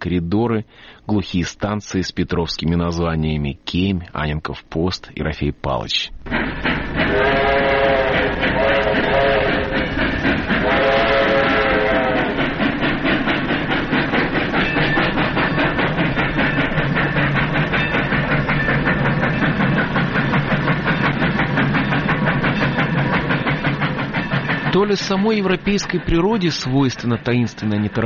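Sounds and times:
speech: 0:00.0 - 0:07.4, 0:24.8 - 0:28.0
slow passenger train wheels clattering on track joints: 0:06.2 - 0:28.0
slow passenger train whistle: 0:06.8 - 0:12.6.

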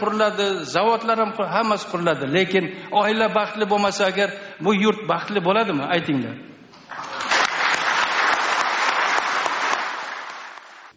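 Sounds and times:
speech: 0:00.0 - 0:06.5
crowd applauding a speech: 0:06.8 - 0:10.9.

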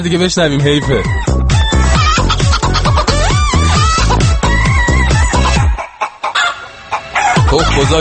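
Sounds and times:
speech: 0:00.0 - 0:01.5, 0:07.6 - 0:07.9
upbeat electronic dance track with thumping beat: 0:00.0 - 0:05.8, 0:07.3 - 0:07.9
sampled chicken clucks: 0:05.7 - 0:07.7
sampled rooster calls: 0:06.3 - 0:07.5.

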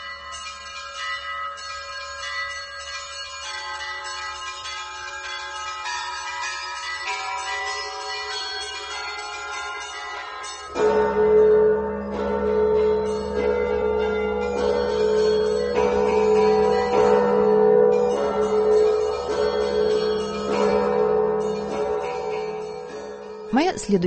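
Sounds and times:
church bells ringing in a layered peal: 0:00.0 - 0:24.0.

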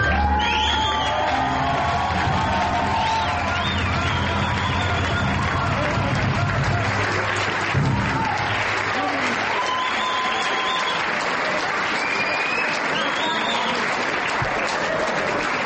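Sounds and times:
festival audience clapping for young jazz performers: 0:00.0 - 0:15.6
festival crowd whooping and shouting: 0:00.0 - 0:15.6.

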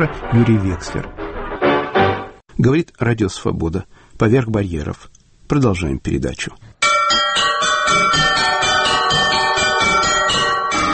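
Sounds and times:
speech: 0:00.0 - 0:01.2, 0:02.6 - 0:06.7, 0:07.9 - 0:09.2
several church bells pealing together: 0:06.8 - 0:10.9.

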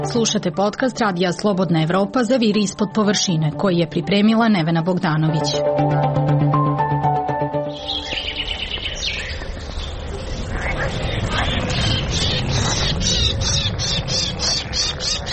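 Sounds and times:
speech: 0:00.2 - 0:06.4
birds chirping: 0:07.6 - 0:15.3
frogs croaking: 0:07.7 - 0:15.3
soft wind-like rush: 0:08.3 - 0:15.3.

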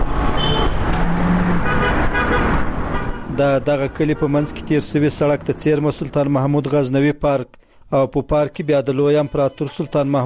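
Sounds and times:
road traffic on the Kabul–Kandahar highway beside a village market near Ghazni: 0:00.0 - 0:07.0
car horn toot: 0:00.4 - 0:00.9, 0:01.6 - 0:03.4
speech: 0:03.4 - 0:10.2.

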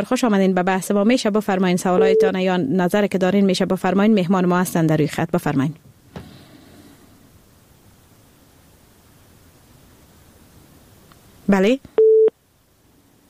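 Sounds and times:
speech: 0:00.0 - 0:05.9, 0:11.5 - 0:12.0
steady telephone beep after call cut off: 0:02.0 - 0:02.3, 0:12.0 - 0:12.3
faint telephone line hiss: 0:06.0 - 0:13.2.

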